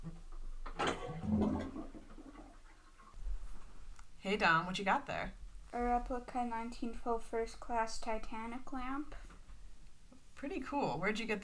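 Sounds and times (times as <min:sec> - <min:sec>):
bathtub water draining: 0:00.0 - 0:03.5
speech: 0:04.3 - 0:09.2, 0:10.4 - 0:11.4.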